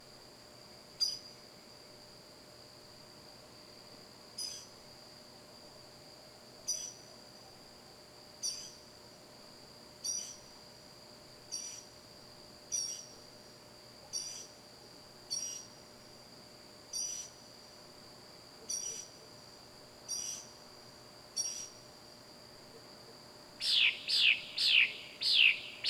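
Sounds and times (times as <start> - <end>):
loud wild bird at night: 1.0 - 1.4, 4.3 - 4.8, 6.6 - 8.9, 10.0 - 10.6, 11.5 - 12.0, 12.7 - 13.3, 14.0 - 14.6, 15.3 - 15.8, 16.9 - 17.4, 18.6 - 19.3, 20.1 - 20.6, 21.4 - 21.9, 22.6 - 25.8.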